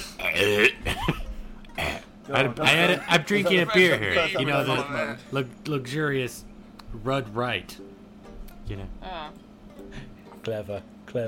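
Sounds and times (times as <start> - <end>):
loud burp with a rough voiced rasp: 0.2 - 0.8, 1.7 - 2.1
speech: 0.4 - 0.9, 2.3 - 7.9, 8.7 - 11.2.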